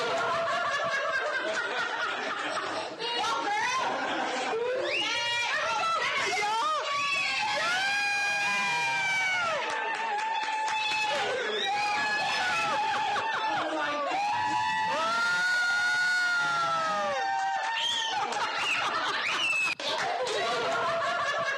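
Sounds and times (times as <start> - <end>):
excited laughter: 0.0 - 6.8, 11.1 - 14.2, 17.9 - 21.5
crowd cheering: 0.0 - 21.5.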